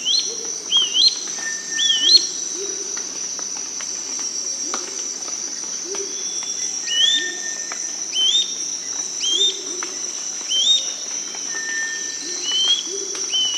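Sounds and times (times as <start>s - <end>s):
Gray-crowned flycatcher song in South America: 0.0s - 3.0s, 5.9s - 13.5s
steady high insect drone: 0.0s - 13.5s.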